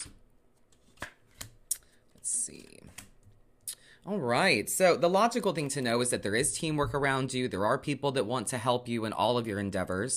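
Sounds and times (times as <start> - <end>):
tarot deck being shuffled in a dense riffle: 0.6 - 1.6
tarot cards being drawn with crisp flicks and snaps: 0.6 - 1.9
speech: 4.0 - 10.1.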